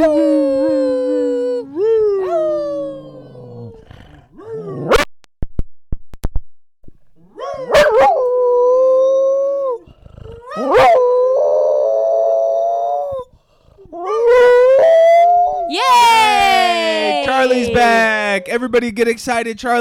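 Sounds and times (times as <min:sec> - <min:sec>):
dog howling: 0:00.0 - 0:05.0, 0:07.2 - 0:13.3, 0:13.9 - 0:18.5
speech: 0:18.6 - 0:19.7.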